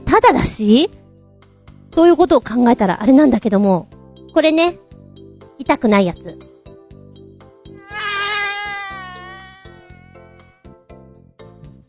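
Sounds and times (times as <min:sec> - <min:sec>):
speech: 0:00.2 - 0:01.0, 0:02.0 - 0:04.8, 0:05.6 - 0:06.5
artificial-sounding mosquito buzzing sound effect: 0:07.8 - 0:10.7.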